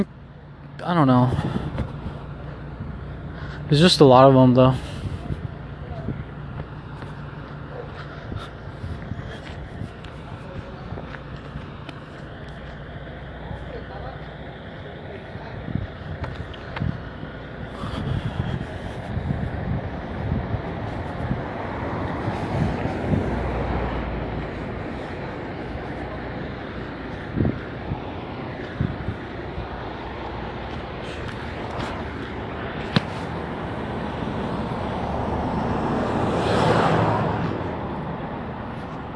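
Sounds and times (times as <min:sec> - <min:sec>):
heavy vehicle rumble: 0:00.0 - 0:39.1
trucks rolling past: 0:00.0 - 0:39.1
speech: 0:00.8 - 0:01.7, 0:03.7 - 0:04.9
wind buffeting the microphone: 0:01.2 - 0:03.9, 0:04.8 - 0:07.2, 0:08.0 - 0:13.4, 0:15.3 - 0:39.1.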